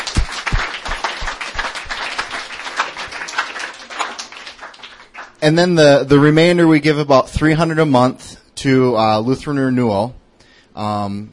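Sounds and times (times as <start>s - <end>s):
individual hand claps: 0.0s - 5.4s
room full of people applauding: 0.0s - 5.4s
speech: 5.4s - 10.2s, 10.8s - 11.3s.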